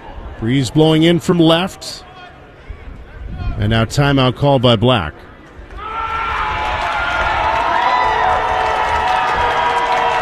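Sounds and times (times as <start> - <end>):
large stadium crowd at a baseball game roaring and cheering: 0.0 - 10.2
speech: 0.4 - 2.1, 3.6 - 5.3
scattered shouts and whoops from the crowd: 5.7 - 10.2.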